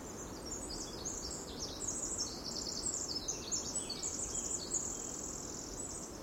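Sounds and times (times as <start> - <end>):
steady broad background hiss: 0.0 - 6.2
winter wren song along a mossy rainforest trail near the Ho River: 0.0 - 6.2.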